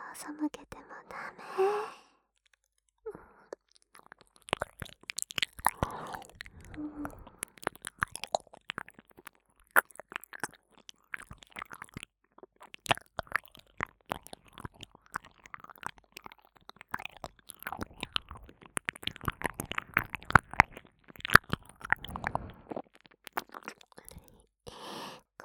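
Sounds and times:
speech: 0:00.2 - 0:02.0
wet squelching mouth sounds: 0:02.4 - 0:25.0.

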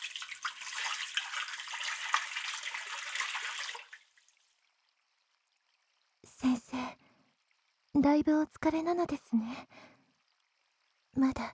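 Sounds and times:
hot water pouring and splashing rinsing off soap foam: 0:00.0 - 0:04.5
speech: 0:08.0 - 0:09.8, 0:11.2 - 0:11.5.

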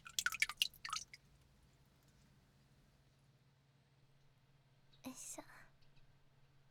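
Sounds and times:
water dripping from wet hands lifted out of a bowl: 0:00.0 - 0:01.6.

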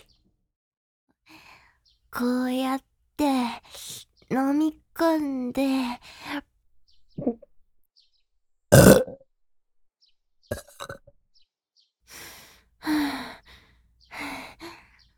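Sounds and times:
speech: 0:02.2 - 0:02.8, 0:04.4 - 0:06.4
person burping: 0:08.8 - 0:09.2, 0:10.5 - 0:11.1
soft breathy sighs: 0:12.1 - 0:15.1.

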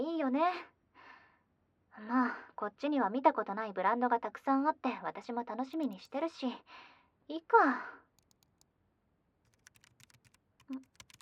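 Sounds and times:
speech: 0:00.2 - 0:00.7, 0:02.0 - 0:08.0, 0:10.7 - 0:10.9
fingers typing on a computer keyboard: 0:05.7 - 0:06.1, 0:08.2 - 0:08.6, 0:09.5 - 0:11.2.

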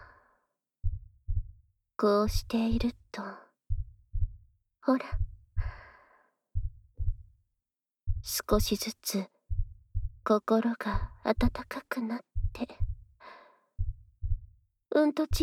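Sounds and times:
heartbeat: 0:00.8 - 0:01.6, 0:02.2 - 0:03.0, 0:03.7 - 0:05.9, 0:06.6 - 0:07.4, 0:08.1 - 0:08.9, 0:09.5 - 0:13.2, 0:13.8 - 0:14.6
speech: 0:02.0 - 0:03.4, 0:04.8 - 0:05.3, 0:08.2 - 0:09.3, 0:10.3 - 0:12.8, 0:14.9 - 0:15.4.

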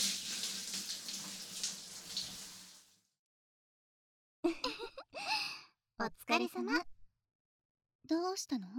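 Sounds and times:
shower water rinsing a body: 0:00.0 - 0:03.0
speech: 0:06.3 - 0:06.9, 0:08.1 - 0:08.7.

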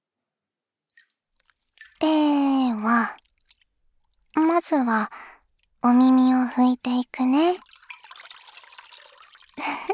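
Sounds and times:
faint scattered wet drips: 0:00.9 - 0:06.1, 0:07.5 - 0:09.9
small squishy sounds: 0:00.9 - 0:06.4, 0:07.4 - 0:08.8
water splashing and sloshing: 0:00.9 - 0:06.5, 0:07.2 - 0:09.9
speech: 0:04.5 - 0:07.7.

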